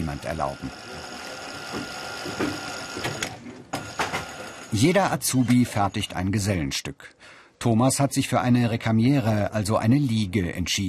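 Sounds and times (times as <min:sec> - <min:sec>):
speech: 0:00.0 - 0:03.3, 0:04.7 - 0:10.8
sewing machine used by trainee upholsterers whirring: 0:00.0 - 0:06.1
sewing machine clicks and thumps as stitching starts and stops: 0:01.6 - 0:04.6.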